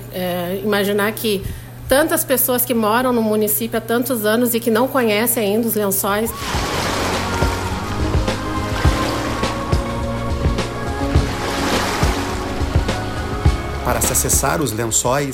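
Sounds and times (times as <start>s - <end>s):
speech: 0.2s - 6.8s, 14.2s - 15.3s
lagoon water rushing and splashing against a boat hull: 6.3s - 14.6s
boat motor drone crossing lagoon water: 6.3s - 14.9s.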